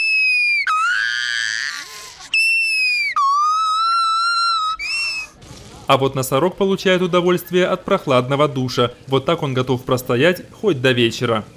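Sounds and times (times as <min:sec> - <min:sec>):
gibbons crying out in high-pitched whistle-like whoops: 0:00.0 - 0:05.4
orangutan crying out excitedly: 0:00.0 - 0:05.4
speech: 0:05.9 - 0:11.5.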